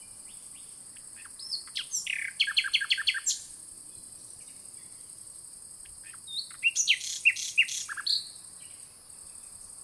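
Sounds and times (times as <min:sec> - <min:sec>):
common nightingale singing, Luscinia megarhynchos: 0:00.0 - 0:09.8.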